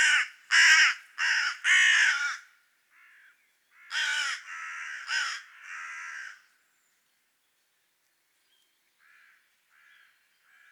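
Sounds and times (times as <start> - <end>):
Carrion crow Corvus corone calling with loud hoarse caws: 0.0 - 6.5, 9.0 - 10.7.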